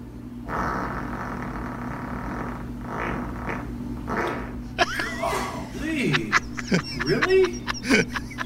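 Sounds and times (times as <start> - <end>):
loud prolonged sputtering fart: 0.4 - 4.8
laughter: 4.8 - 8.4.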